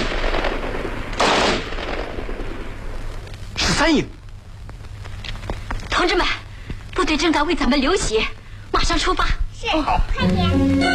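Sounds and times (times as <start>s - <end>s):
dense gunfire with rapid rattling shots: 0.0s - 3.0s
speech: 3.8s - 4.2s, 7.1s - 10.9s.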